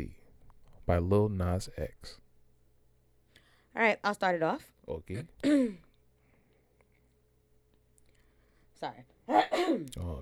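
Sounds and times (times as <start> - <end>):
faint steady hum: 0.0 - 10.2
speech: 0.9 - 2.2, 3.8 - 5.8, 8.8 - 10.2
cough: 9.3 - 10.1.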